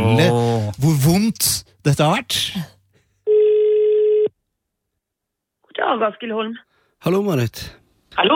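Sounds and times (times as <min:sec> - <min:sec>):
speech: 0:00.1 - 0:02.8, 0:05.8 - 0:08.3
telephone ringback tone: 0:03.3 - 0:04.3.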